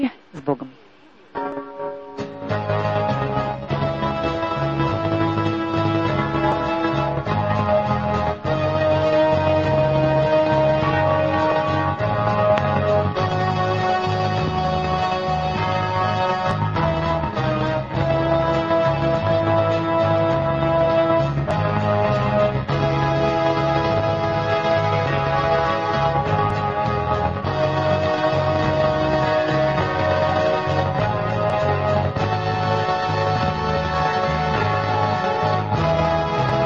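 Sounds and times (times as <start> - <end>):
speech: 0.0 - 0.8
song with layered sustained tones over pulsing low end: 1.2 - 36.6.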